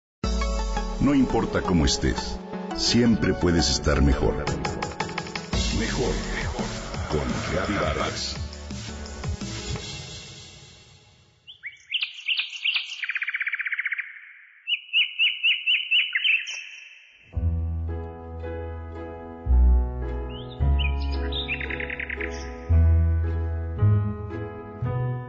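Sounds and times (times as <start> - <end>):
soft instrumental music with low bass tones: 0.2 - 11.0, 17.4 - 25.2
speech: 1.0 - 4.8, 5.8 - 6.3, 7.1 - 8.4
birds singing and chirping: 11.5 - 17.3, 20.2 - 22.8.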